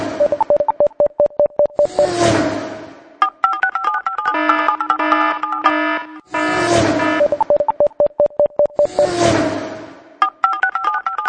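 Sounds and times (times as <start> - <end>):
Asus P526 phone ringtone: 0.2 - 2.1, 3.2 - 6.3, 7.0 - 9.2, 10.2 - 11.2.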